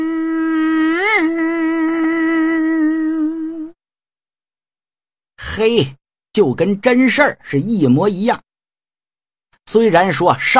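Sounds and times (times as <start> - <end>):
voice imitating a mosquito's buzz: 0.0 - 3.8
speech: 5.6 - 8.4, 9.7 - 10.5.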